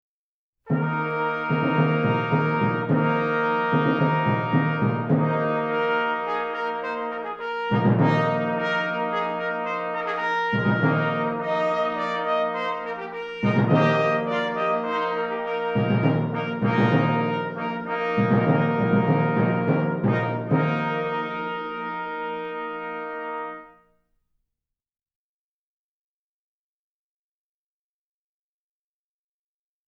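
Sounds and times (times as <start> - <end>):
short brass fanfare: 0.7 - 23.8.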